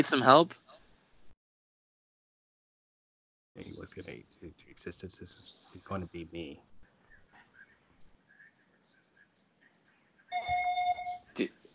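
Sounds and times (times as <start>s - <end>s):
speech: 0.0s - 0.6s, 3.6s - 6.7s, 11.4s - 11.6s
mobile phone ringtone with electronic melody: 10.3s - 11.2s.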